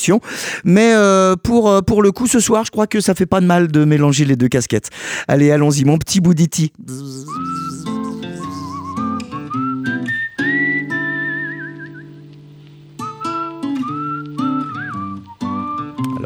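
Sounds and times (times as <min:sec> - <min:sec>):
speech: 0:00.0 - 0:07.5
whistled melody: 0:07.1 - 0:12.2, 0:13.0 - 0:16.2.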